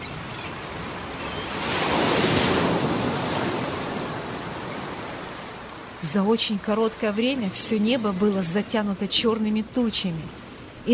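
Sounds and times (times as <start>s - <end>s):
gusting wind: 0.0s - 10.9s
roaring sea waves: 0.0s - 10.9s
speech: 6.0s - 10.9s.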